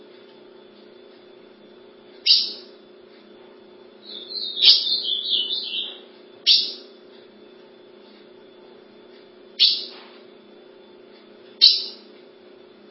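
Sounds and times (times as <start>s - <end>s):
ultramarine grosbeak warbling whistled phrase: 4.0s - 6.8s.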